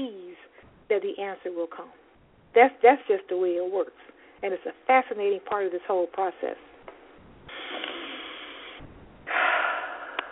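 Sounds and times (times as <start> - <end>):
breathy breathing: 0.4 - 0.8, 4.0 - 4.4, 7.5 - 10.3
speech: 0.9 - 2.0, 2.6 - 6.7.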